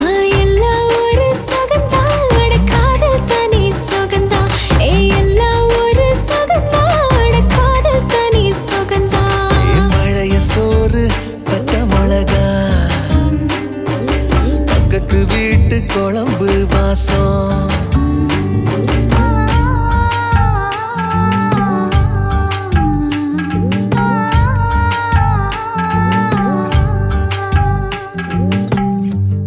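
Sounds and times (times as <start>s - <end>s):
female song: 0.0s - 28.7s.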